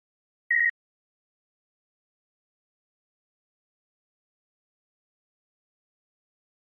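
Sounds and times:
electronic double beep: 0.5s - 0.8s.

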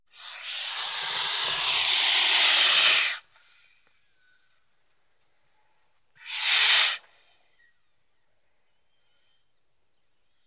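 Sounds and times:
albino boas hissing: 0.1s - 3.2s, 6.2s - 7.0s.

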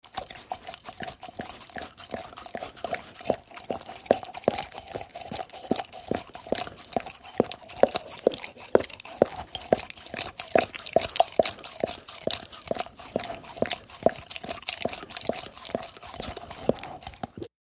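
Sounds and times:
dog licking mug: 0.1s - 17.5s.

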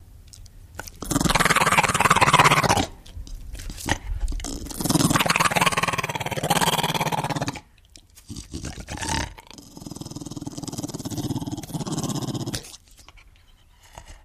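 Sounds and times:
pit bull growling threateningly: 1.0s - 3.0s, 3.9s - 7.7s, 8.3s - 12.8s.

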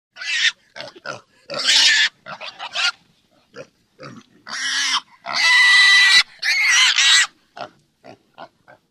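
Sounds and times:
multiple pigs squealing: 0.2s - 3.0s, 3.6s - 7.7s.

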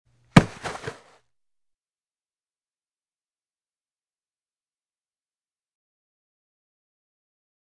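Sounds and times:
hand grabbing a football: 0.4s - 1.2s.

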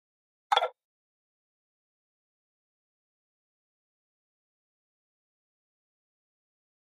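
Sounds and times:
hollow wooden button: 0.5s - 0.8s.

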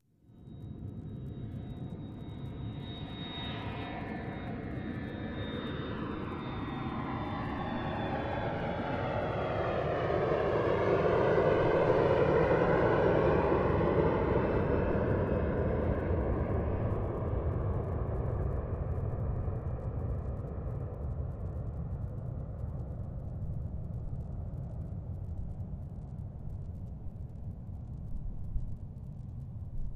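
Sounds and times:
plane flying overhead: 0.4s - 29.9s.

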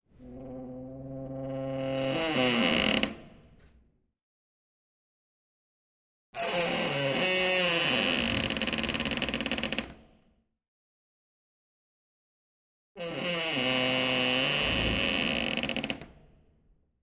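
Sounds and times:
wooden door creaking: 0.2s - 3.4s, 6.4s - 10.0s, 13.0s - 16.2s.

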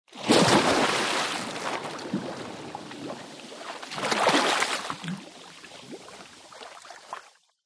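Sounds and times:
large water splash from a dive: 0.1s - 5.2s.

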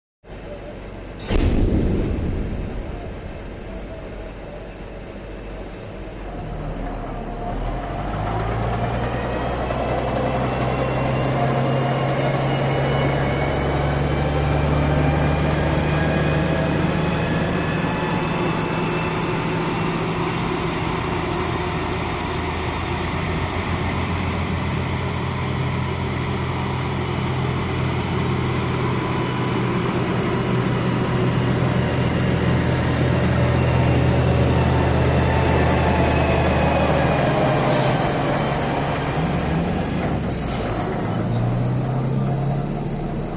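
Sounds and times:
bulldozer maneuvering: 2.3s - 43.3s
bulldozer brake squeals: 6.4s - 22.2s, 31.8s - 43.3s.

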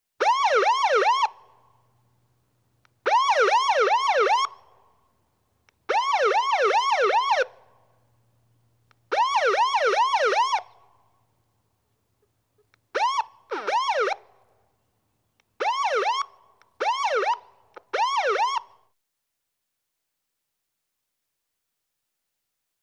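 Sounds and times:
multiple yelper sirens: 0.2s - 1.8s, 3.0s - 4.9s, 5.9s - 7.8s, 9.1s - 11.1s, 12.9s - 14.4s, 15.6s - 18.9s.

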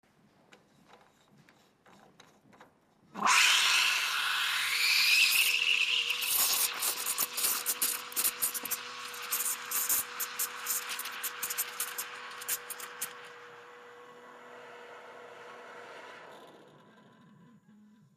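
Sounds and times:
cappuccino coffee machine running: 3.5s - 14.6s.

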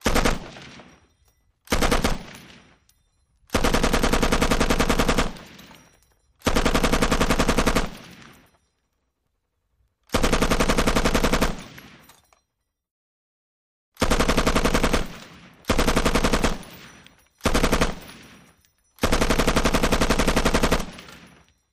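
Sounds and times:
M60 machine gun bursts of various length: 0.0s - 0.6s, 1.7s - 2.4s, 3.5s - 5.6s, 6.4s - 8.2s, 10.1s - 11.7s, 14.0s - 18.2s, 19.0s - 21.3s.

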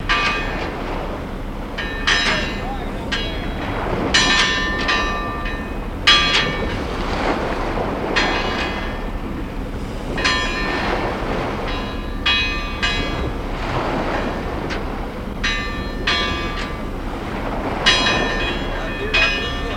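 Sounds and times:
buoy bells: 0.0s - 7.2s, 7.8s - 19.7s
water: 0.0s - 19.7s
wind: 0.0s - 19.7s
voices: 2.0s - 6.9s, 17.4s - 19.7s.

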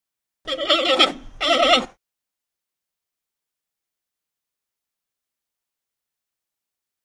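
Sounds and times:
multiple panda bleats: 0.5s - 1.9s.

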